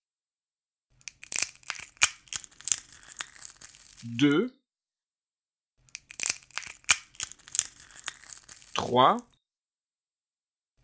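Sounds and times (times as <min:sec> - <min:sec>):
eggs cracking into a salad bowl: 0:01.1 - 0:04.1, 0:06.0 - 0:08.9
speech: 0:04.0 - 0:04.6, 0:08.9 - 0:09.3.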